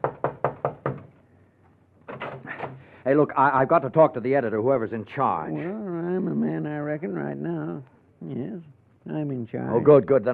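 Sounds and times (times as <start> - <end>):
fist pounding on a door: 0.0 - 1.1
speech: 3.1 - 10.3.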